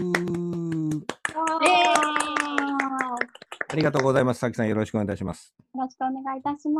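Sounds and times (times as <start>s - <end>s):
applause hand clapping: 0.0s - 4.5s
speech: 3.7s - 6.7s.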